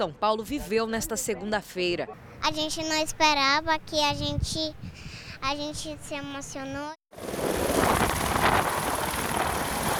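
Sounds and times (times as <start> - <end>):
speech: 0.0 - 7.3
gusty wind: 2.4 - 9.9
police helicopter flying overhead: 7.1 - 9.9.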